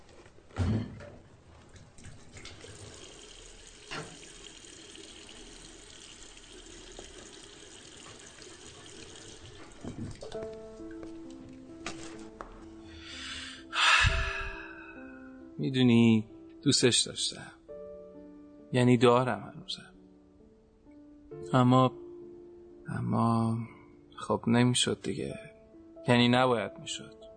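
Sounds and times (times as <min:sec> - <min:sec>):
tap water running into a kettle: 0:01.7 - 0:11.6
speech: 0:15.6 - 0:17.6, 0:18.7 - 0:19.9, 0:21.4 - 0:22.0, 0:23.1 - 0:23.7, 0:24.3 - 0:25.5, 0:26.1 - 0:27.2.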